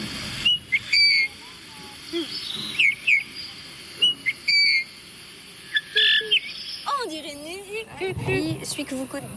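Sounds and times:
faint steady hiss of insects: 0.0 - 9.3
Eurasian bullfinch piping whistled calls: 0.4 - 1.4, 2.0 - 5.0, 5.6 - 7.1
speech: 8.7 - 9.3.

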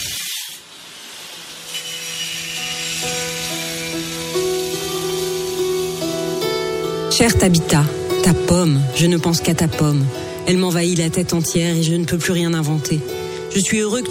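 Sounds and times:
circular saw cutting wood: 0.0 - 7.1
speech: 7.2 - 14.1.

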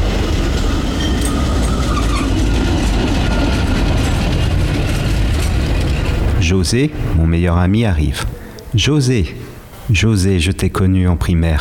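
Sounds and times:
tram rolling along its rails: 0.0 - 8.8
speech: 6.6 - 11.5.

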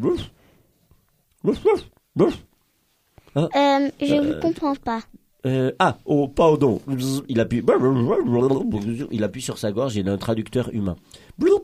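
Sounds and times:
person imitating a dog barking: 0.0 - 0.4, 1.4 - 2.5, 4.1 - 4.6, 7.7 - 9.0
speech: 0.0 - 0.4, 1.4 - 2.5, 3.4 - 11.6.

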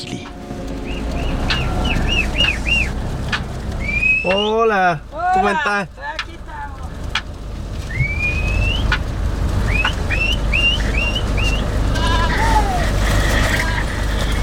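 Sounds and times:
steady low rumble of wind or movement: 0.0 - 14.4
speech: 0.1 - 0.3, 4.2 - 6.0
goat herd bleating outdoors during seasonal transhumance: 11.8 - 14.2.

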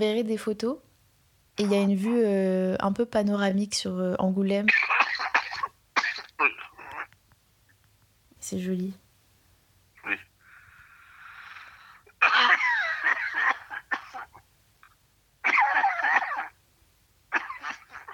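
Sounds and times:
speech: 0.0 - 0.9, 1.6 - 5.0, 6.4 - 6.6, 8.4 - 9.0, 10.0 - 10.3
heavy hacking coughing: 4.7 - 7.1, 12.1 - 14.4, 15.4 - 16.6, 17.3 - 18.1
wheezing inhale: 10.4 - 12.2.

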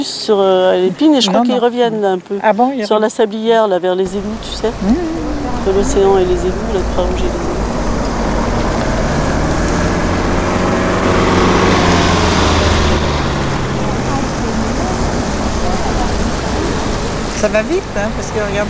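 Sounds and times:
speech: 0.0 - 7.6, 17.4 - 18.6
cars driving past: 4.0 - 18.6.

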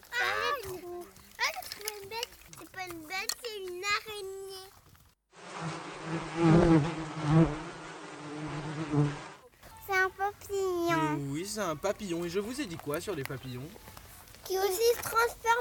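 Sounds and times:
child talking: 0.0 - 4.7, 9.6 - 11.3, 14.4 - 15.5
bees buzzing: 5.4 - 9.5
speech: 11.8 - 15.5.

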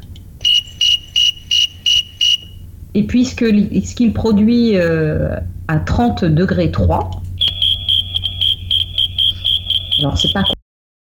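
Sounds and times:
faint low hum: 0.0 - 10.6
snowy tree cricket chirping: 0.4 - 2.6, 7.4 - 10.6
speech: 3.0 - 7.2, 10.0 - 10.6.

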